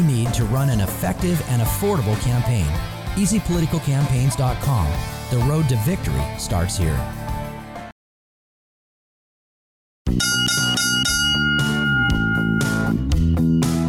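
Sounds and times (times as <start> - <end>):
speech: 0.0 - 7.2
loud resonant bell chimes marking final round: 10.2 - 13.1.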